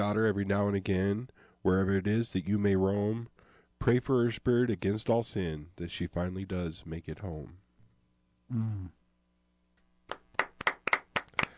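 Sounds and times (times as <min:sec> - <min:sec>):
speech: 0:00.1 - 0:07.6, 0:08.5 - 0:09.0
polite golf-clap applause from a small group: 0:10.1 - 0:11.5.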